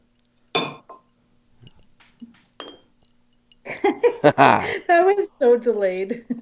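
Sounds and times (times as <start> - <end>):
glass and bottle clinking during a toast: 0.5 - 3.6
laughter: 3.9 - 4.8
speech: 4.2 - 4.7, 5.4 - 6.4.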